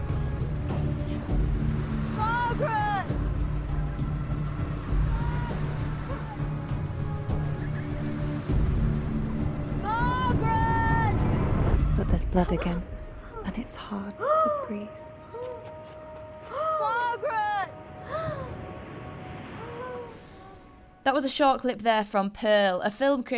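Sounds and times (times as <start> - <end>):
ocean waves washing ashore: 0.0 - 12.1, 16.8 - 21.0
speech: 12.4 - 12.9, 13.6 - 15.1, 21.1 - 23.3.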